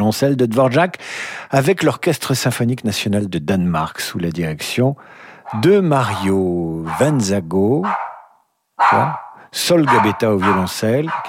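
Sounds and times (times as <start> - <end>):
speech: 0.1 - 8.1, 8.8 - 11.2
Cavalier King Charles spaniel barking: 5.4 - 11.2.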